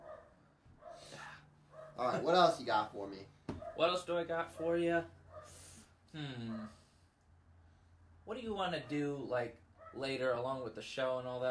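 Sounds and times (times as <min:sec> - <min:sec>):
dogs barking: 0:00.0 - 0:02.4, 0:03.5 - 0:05.6, 0:08.7 - 0:10.1
speech: 0:02.0 - 0:05.2, 0:06.1 - 0:06.8, 0:08.3 - 0:11.4.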